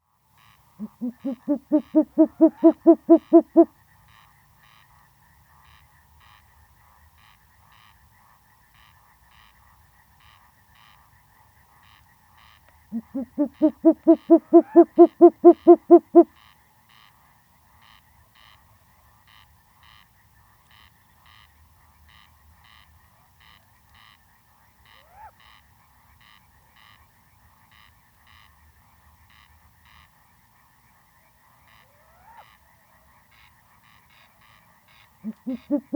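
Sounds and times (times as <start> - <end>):
Short-eared Owl Asio flammeus calling: 0.8 - 3.7, 13.0 - 16.3, 35.2 - 35.9.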